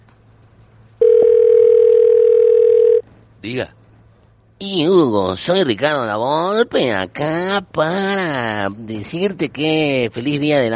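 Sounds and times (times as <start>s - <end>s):
faint low noise: 0.0s - 10.7s
telephone line tone before a wiretapped phone call: 1.0s - 3.0s
speech: 3.4s - 3.8s, 4.6s - 10.7s.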